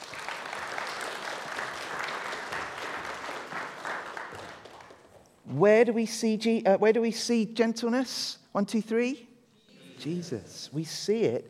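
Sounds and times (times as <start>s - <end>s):
audience clapping: 0.0s - 5.4s
speech: 5.5s - 9.3s, 10.0s - 11.4s.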